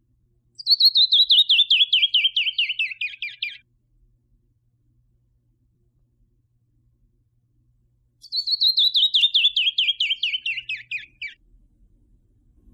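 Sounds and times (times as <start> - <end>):
canyon wren singing cascading song: 0.6 - 3.6, 8.2 - 11.4.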